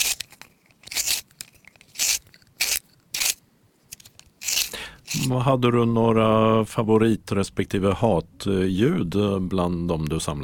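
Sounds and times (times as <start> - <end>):
pencil grinding in a pencil sharpener: 0.0 - 5.3
speech: 5.2 - 10.4.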